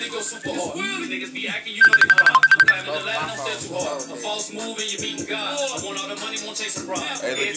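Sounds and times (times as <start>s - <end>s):
speech: 0.2s - 7.5s
phone ringing with electronic trill: 1.8s - 2.8s.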